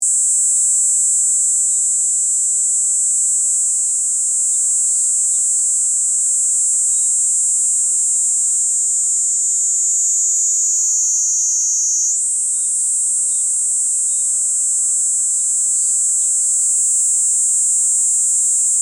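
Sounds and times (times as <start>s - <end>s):
niinii cicada buzzing: 0.0s - 18.8s.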